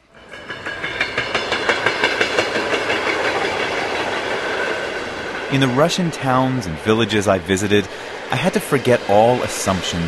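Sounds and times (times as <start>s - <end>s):
train clattering along rails: 0.0s - 10.0s
speech: 5.5s - 10.0s.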